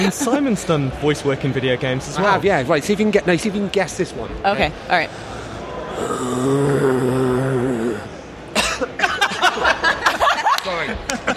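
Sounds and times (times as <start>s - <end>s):
speech: 0.0s - 5.4s, 6.0s - 7.3s
video game zombie moaning and snarling: 5.8s - 8.2s
laughter: 8.6s - 11.3s.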